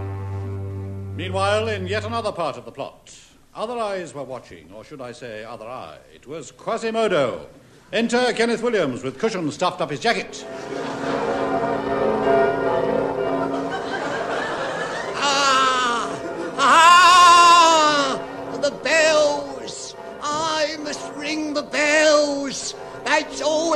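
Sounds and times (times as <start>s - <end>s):
speech: 1.2s - 11.1s, 21.3s - 23.7s
laughter: 10.5s - 12.2s, 13.2s - 18.8s
voice imitating church bells with sung tones: 15.1s - 23.7s.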